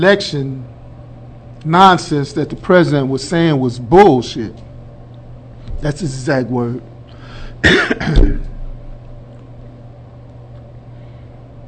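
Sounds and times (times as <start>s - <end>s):
speech: 0.0s - 0.7s, 1.6s - 4.6s, 5.8s - 6.9s, 7.6s - 8.5s
quiet hum: 0.0s - 11.6s
person clearing their throat: 7.6s - 8.6s
person coughing harshly: 7.6s - 8.6s.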